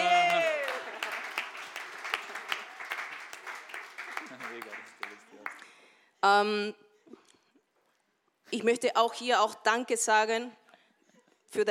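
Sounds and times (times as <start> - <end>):
audience applauding: 0.0 - 5.8
speech: 6.2 - 6.8, 8.5 - 10.6, 11.5 - 11.7.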